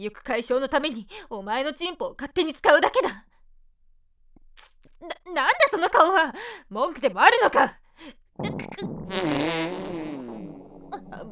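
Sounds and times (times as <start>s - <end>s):
speech: 0.0s - 3.3s, 4.6s - 10.1s
long loud fart: 8.4s - 11.2s.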